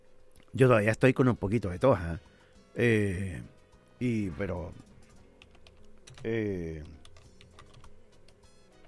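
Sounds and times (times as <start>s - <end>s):
speech: 0.5s - 4.9s, 6.2s - 7.0s
typing on a computer keyboard: 5.4s - 8.8s.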